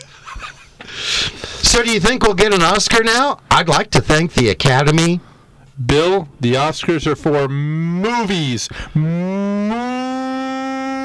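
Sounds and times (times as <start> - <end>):
speech: 1.8 - 9.9
long loud cow moo: 7.6 - 8.3, 9.0 - 11.0.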